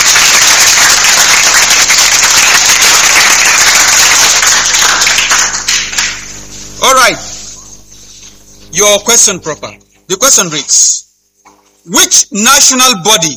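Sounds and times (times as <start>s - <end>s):
audience applause: 0.0s - 6.5s
speech: 8.8s - 11.0s, 11.9s - 13.3s.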